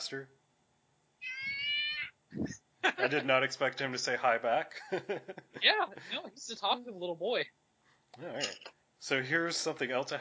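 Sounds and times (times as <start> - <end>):
speech: 0.0 - 0.4, 2.3 - 10.1
cat meowing: 1.2 - 2.2
laughter: 2.4 - 3.6, 4.7 - 6.3.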